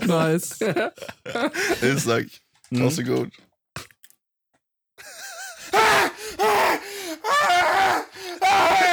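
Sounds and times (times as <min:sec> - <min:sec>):
speech: 0:00.1 - 0:03.5
voice imitating a man burning with anguished wails: 0:05.8 - 0:08.9.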